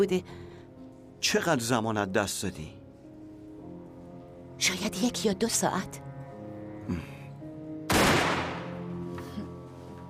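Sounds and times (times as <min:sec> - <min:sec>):
speech: 0:00.0 - 0:00.4, 0:01.2 - 0:02.8, 0:04.6 - 0:06.1, 0:06.9 - 0:07.1
test gunshot fired to check gunpowder residue: 0:07.9 - 0:08.8.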